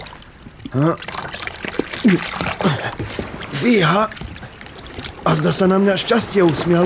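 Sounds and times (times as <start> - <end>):
water splashing as heavy fishing net with large fish is hauled out: 0.0 - 6.8
speech: 0.7 - 1.2, 2.0 - 3.0, 3.6 - 4.2, 5.2 - 6.8
short strained vocal grunts: 1.9 - 3.2.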